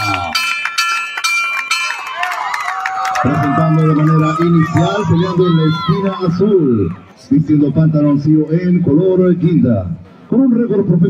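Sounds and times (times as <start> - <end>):
boxing ring bell clanging: 0.0 - 2.1
excited arena crowd roaring: 1.9 - 7.2
speech: 3.2 - 11.0.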